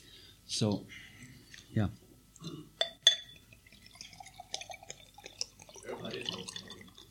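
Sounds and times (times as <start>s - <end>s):
speech: 0.5s - 1.0s, 1.7s - 2.6s
glass clinks: 2.8s - 3.4s
water pouring into a glass: 3.3s - 7.0s.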